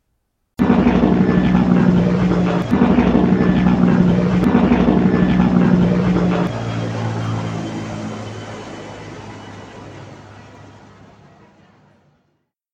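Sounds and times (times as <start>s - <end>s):
propeller airplane engine drone during a flight ending in a landing: 0.6s - 12.3s.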